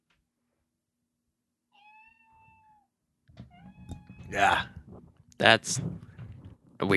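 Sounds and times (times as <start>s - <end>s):
cat meowing played by smart speaker: 1.7s - 2.9s, 3.5s - 4.6s
speech: 4.3s - 4.8s, 5.4s - 6.1s, 6.8s - 6.9s.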